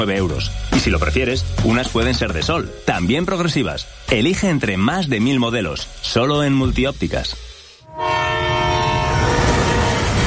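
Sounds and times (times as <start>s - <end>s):
speech: 0.0s - 8.1s
tram or train horn blaring: 7.8s - 10.2s.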